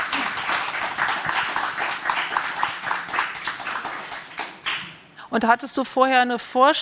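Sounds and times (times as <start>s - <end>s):
audience clapping: 0.0s - 5.0s
speech: 5.3s - 6.8s.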